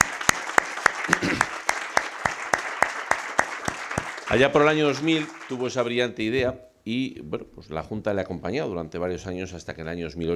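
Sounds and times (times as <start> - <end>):
sharp, evenly spaced claps: 0.0 - 5.8
audience applauding at an awards event: 0.0 - 5.9
speech: 4.3 - 10.3.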